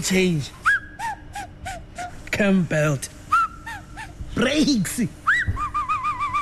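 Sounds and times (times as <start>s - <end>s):
speech: 0.0s - 0.6s, 2.4s - 3.2s, 4.4s - 5.2s
whistling: 0.6s - 1.8s, 3.3s - 3.6s, 5.2s - 6.4s.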